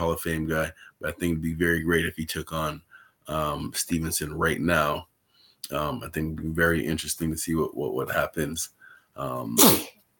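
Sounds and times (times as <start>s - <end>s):
speech: 0.1s - 10.0s
loud sneeze: 9.6s - 10.0s.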